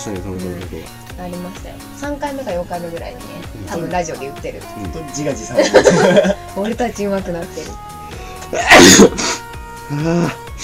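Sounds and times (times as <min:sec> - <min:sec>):
speech: 0:00.0 - 0:07.9, 0:08.5 - 0:10.6
laughter: 0:05.4 - 0:06.5
person sneezing: 0:08.5 - 0:10.6.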